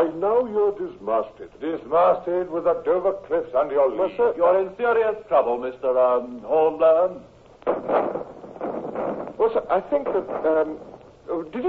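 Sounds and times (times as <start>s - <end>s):
speech: 0.0s - 11.6s
cannon fire: 7.6s - 11.2s.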